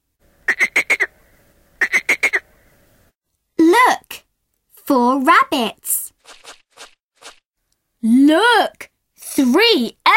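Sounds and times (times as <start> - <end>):
frogs croaking: 0.5 - 1.2, 1.8 - 2.5
speech: 4.9 - 5.8, 8.3 - 10.0.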